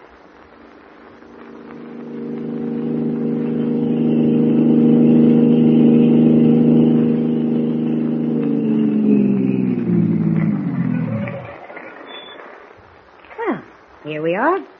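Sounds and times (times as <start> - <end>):
car engine humming while driving toward an apartment: 0.7 - 11.6.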